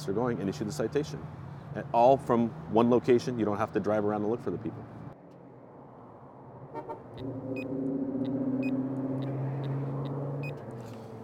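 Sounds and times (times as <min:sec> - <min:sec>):
speech: 0:00.0 - 0:05.0, 0:07.2 - 0:07.9
road noise: 0:00.0 - 0:11.2
BMW car driving past: 0:06.4 - 0:11.2.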